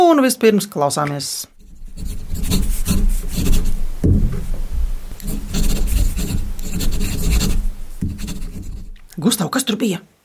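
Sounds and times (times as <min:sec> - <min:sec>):
speech: 0:00.1 - 0:02.2, 0:09.5 - 0:10.1
scratchy pen strokes of handwriting on paper: 0:01.6 - 0:03.8, 0:05.2 - 0:08.9.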